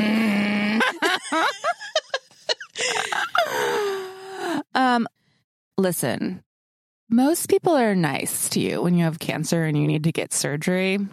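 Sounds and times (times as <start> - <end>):
voice imitating a cartoon character's groan: 0.0 - 1.0
laughter: 0.8 - 3.5
speech: 5.8 - 6.5, 7.1 - 11.1.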